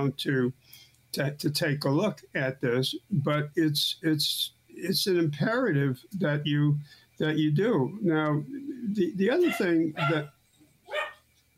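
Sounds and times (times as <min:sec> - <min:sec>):
speech: 0:00.0 - 0:10.4
dog barking: 0:09.4 - 0:10.3, 0:10.9 - 0:11.2.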